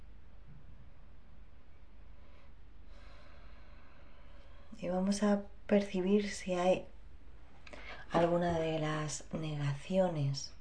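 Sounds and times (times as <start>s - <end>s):
slow deep breath in and out: 2.1s - 4.8s
speech: 4.8s - 6.9s, 8.1s - 10.6s.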